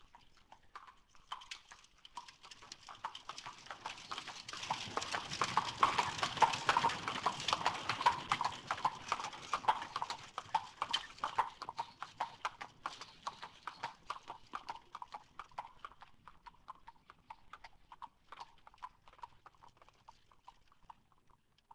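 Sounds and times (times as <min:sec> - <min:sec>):
horse hooves on cobblestones: 0:00.1 - 0:21.3.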